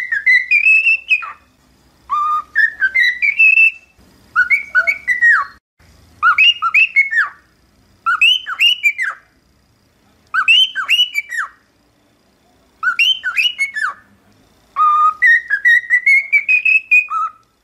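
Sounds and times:
cockatiel whistled song: 0.0s - 1.5s, 2.1s - 5.6s, 6.2s - 9.3s, 10.3s - 11.6s, 12.8s - 14.1s, 14.8s - 17.5s.

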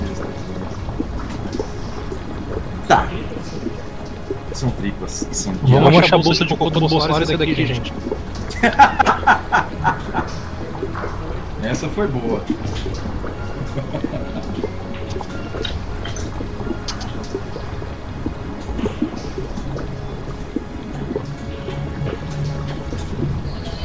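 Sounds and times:
continuous wet trickle of liquids: 0.0s - 23.8s
speech: 4.6s - 10.3s, 11.6s - 14.7s
laughter: 8.5s - 10.3s, 13.6s - 14.6s.

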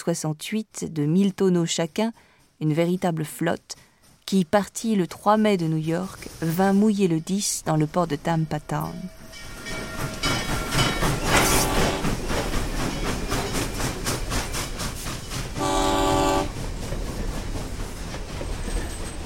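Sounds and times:
speech: 0.0s - 10.1s
train with railway wagons rolling along the railroad in Tampa: 0.4s - 19.2s
train horn blast: 11.2s - 12.2s, 15.6s - 16.6s.

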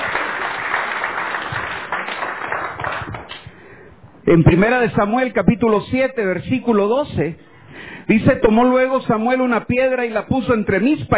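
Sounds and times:
church congregation applauding: 0.0s - 3.4s
speech: 4.3s - 7.5s, 8.1s - 11.1s.

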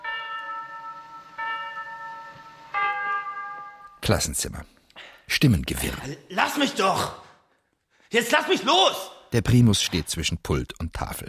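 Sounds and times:
clock tower glockenspiel bell strikes chiming eight o'clock: 0.0s - 4.0s
speech: 4.0s - 7.2s, 8.1s - 11.2s.

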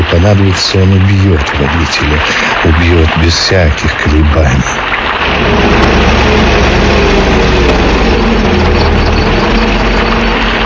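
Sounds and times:
speech: 0.1s - 6.4s
garbage truck heavy engine rumbling drone: 5.0s - 10.6s.

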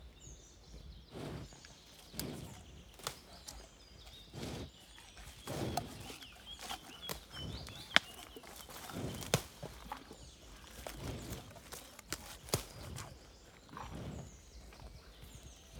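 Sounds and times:
birds chirping: 0.0s - 15.7s
cow breathing in the Marais Poitevin marshes, France: 0.0s - 15.7s.

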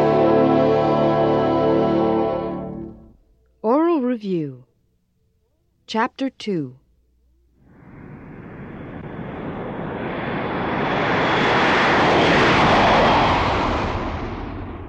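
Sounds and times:
airplane engine roar passing by: 0.0s - 3.2s, 7.6s - 14.8s
speech: 4.2s - 4.7s, 5.9s - 6.8s.

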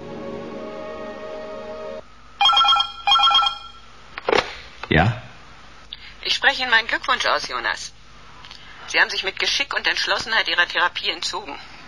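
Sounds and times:
telephone ringing with an incoming call, bright electronic bell: 2.4s - 3.9s
speech: 4.9s - 5.2s, 6.4s - 8.0s, 8.9s - 11.7s.

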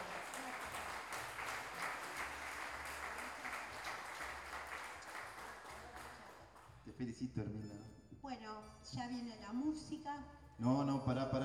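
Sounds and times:
audience applauding at an intercultural gathering of living languages in Salta: 0.0s - 6.8s
speech: 7.0s - 11.4s.

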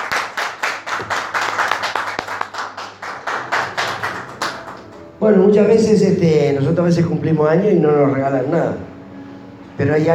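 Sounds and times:
group clapping rhythmically for a woman's birthday: 0.0s - 5.1s
speech: 5.2s - 8.8s, 9.8s - 10.1s.

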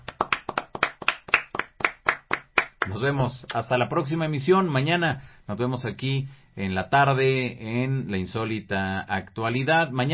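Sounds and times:
hands clapping at a farewell tribute: 0.0s - 3.7s
speech: 2.9s - 10.1s.

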